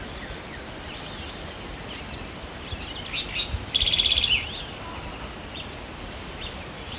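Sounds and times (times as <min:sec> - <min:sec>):
house wren Troglodytes aedon singing: 0:00.0 - 0:06.9.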